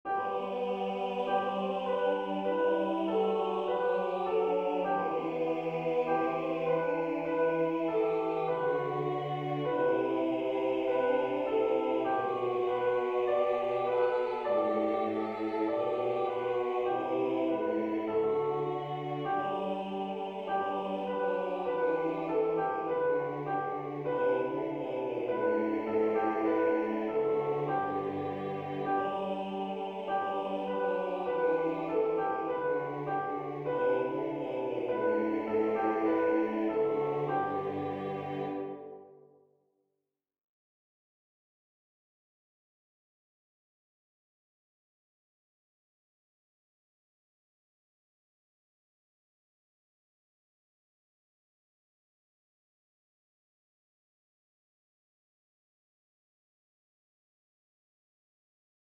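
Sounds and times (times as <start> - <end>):
soprano section singing tutti: 0.1 - 39.2.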